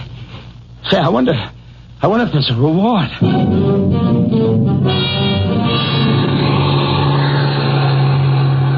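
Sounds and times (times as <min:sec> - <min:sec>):
speech: 0:00.9 - 0:06.2
bus engine revving as the bus pulls away on snow-covered mountain roads: 0:05.1 - 0:08.7.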